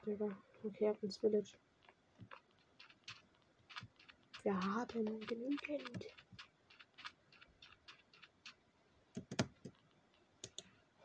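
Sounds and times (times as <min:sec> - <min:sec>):
speech: 0:00.0 - 0:02.4, 0:04.4 - 0:06.2
computer mouse clicking during PC gaming: 0:02.3 - 0:08.6, 0:09.2 - 0:10.7.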